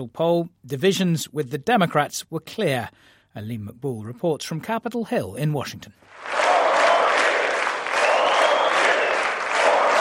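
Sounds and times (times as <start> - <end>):
speech: 0.0 - 6.4
applause in the US House chamber: 6.1 - 9.9
large crowd chanting a re-election slogan in the US House chamber: 6.2 - 9.9.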